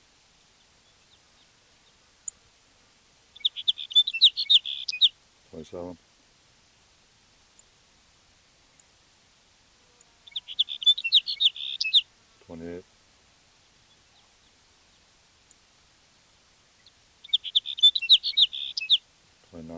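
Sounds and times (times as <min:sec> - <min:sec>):
sage sparrow singing: 0:00.6 - 0:02.4, 0:03.3 - 0:05.2, 0:10.2 - 0:12.1, 0:16.7 - 0:19.0
low spoken voice: 0:05.5 - 0:06.0, 0:12.4 - 0:12.8, 0:19.5 - 0:19.7
speech: 0:05.6 - 0:06.1.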